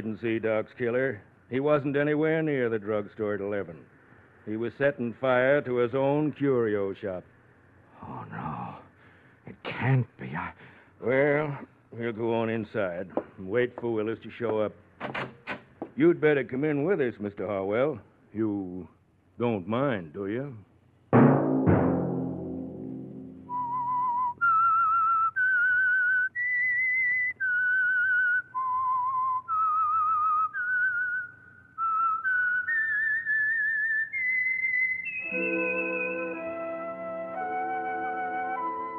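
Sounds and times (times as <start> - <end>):
speech: 0.0 - 7.3, 8.0 - 8.9, 9.5 - 15.4, 16.0 - 20.7
sharp thumps: 21.2 - 23.8
accompanying instruments holding a chord: 21.7 - 23.7, 35.3 - 38.9
high whistled eerie melody: 23.4 - 38.9.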